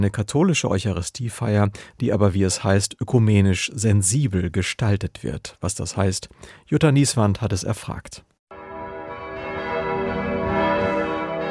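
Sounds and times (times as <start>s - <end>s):
speech: 0.0s - 8.3s
large cathedral bells ringing: 8.5s - 11.4s.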